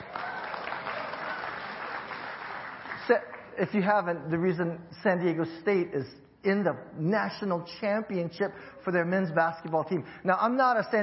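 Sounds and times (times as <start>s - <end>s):
audience applause: 0.0s - 3.4s
speech: 3.1s - 11.0s.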